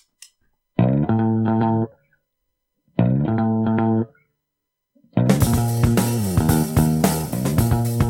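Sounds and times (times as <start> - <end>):
distorted electric guitar riff: 0.8 - 1.9, 3.0 - 4.1, 5.2 - 8.0.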